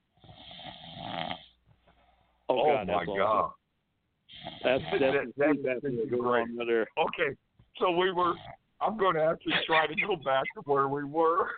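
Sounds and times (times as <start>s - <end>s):
person snoring: 0.2s - 1.6s, 4.3s - 5.2s
speech: 2.5s - 3.6s, 4.3s - 11.5s.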